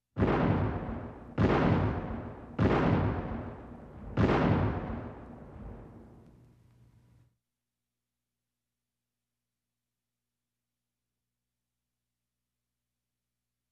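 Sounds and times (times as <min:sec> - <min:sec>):
gunshots: 0:00.2 - 0:06.2.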